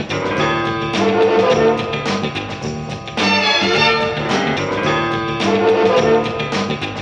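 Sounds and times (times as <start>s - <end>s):
horns playing loops: 0.2s - 6.9s.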